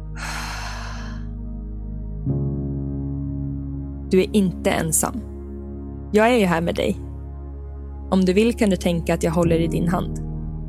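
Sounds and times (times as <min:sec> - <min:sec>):
steady low droning music bed: 0:00.0 - 0:10.6
long airy exhale: 0:00.1 - 0:01.4
speech: 0:04.1 - 0:05.3, 0:06.1 - 0:07.0, 0:08.1 - 0:10.2.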